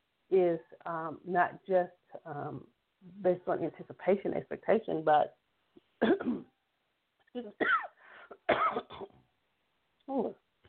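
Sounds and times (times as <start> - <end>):
speech: 0.3 - 5.4, 6.0 - 6.5, 7.4 - 7.9, 10.1 - 10.4
person coughing after swallowing something the wrong way: 6.0 - 6.5, 7.6 - 9.2.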